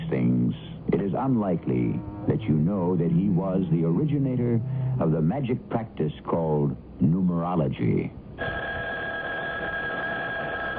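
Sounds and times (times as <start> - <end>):
speech: 1.2 - 8.6
telephone ringing with electronic tone: 8.4 - 10.7.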